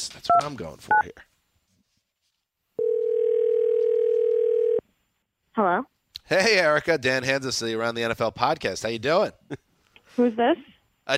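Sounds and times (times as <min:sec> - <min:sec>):
speech: 0:00.1 - 0:01.3, 0:05.6 - 0:11.1
electronic telephone dial tone while placing a call: 0:02.8 - 0:04.8.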